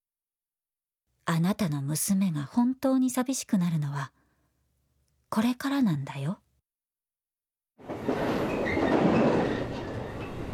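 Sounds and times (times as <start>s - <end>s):
speech: 1.3s - 4.2s, 5.3s - 6.4s
train rumbling and rattling along the tracks: 7.8s - 10.5s.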